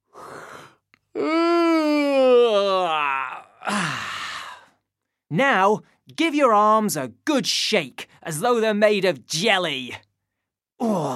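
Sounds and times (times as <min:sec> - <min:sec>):
person yawning: 0:00.4 - 0:04.8, 0:10.8 - 0:11.1
speech: 0:01.2 - 0:01.4, 0:05.3 - 0:10.0.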